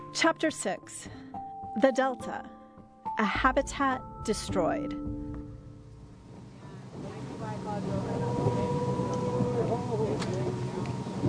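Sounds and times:
speech: 0.2 - 2.6, 3.2 - 5.2
small boat's motor droning: 4.6 - 11.2
wind noise: 6.1 - 11.2.

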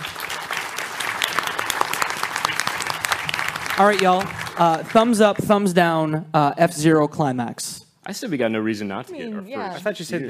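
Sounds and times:
live audience applause: 0.0 - 5.8
speech: 3.8 - 10.2.

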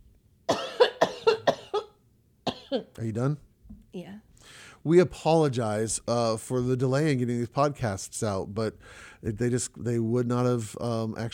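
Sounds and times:
person coughing harshly: 0.5 - 2.9
speech: 2.7 - 11.3.

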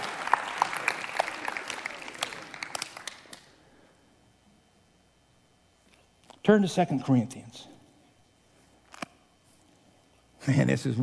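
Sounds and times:
audience clapping: 0.0 - 3.6
speech: 6.5 - 7.7, 10.4 - 11.0.

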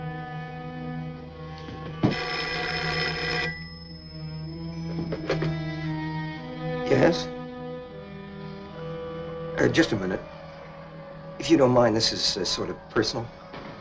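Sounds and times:
telephone bell ringing: 2.0 - 5.9
speech: 7.0 - 7.4, 9.6 - 10.3, 11.4 - 13.4.

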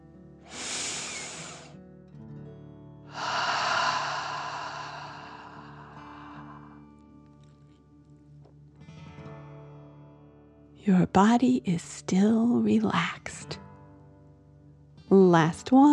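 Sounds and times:
forceful airy exhale through the mouth: 0.5 - 1.8, 3.1 - 6.8
sharp breath in through the nose: 0.5 - 1.8, 3.1 - 6.8
soft sustained tones: 3.1 - 6.9
speech: 10.8 - 13.6, 15.1 - 15.9.

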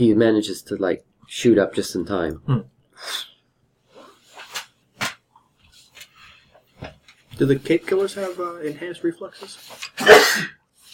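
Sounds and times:
speech: 0.0 - 3.3, 7.4 - 10.6
person sneezing: 10.0 - 10.6.

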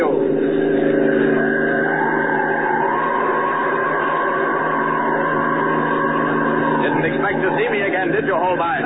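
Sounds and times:
fast car engine roaring while speeding: 0.0 - 8.8.

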